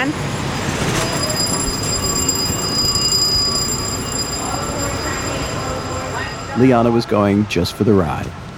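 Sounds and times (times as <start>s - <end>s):
speech: 0.0s - 0.4s, 6.6s - 8.4s
Long Island Railroad commuter train rumbling inside its terminal: 0.0s - 8.5s
thin high ringing tones: 0.4s - 7.5s
faint metallic train wheel squeal: 0.5s - 7.1s.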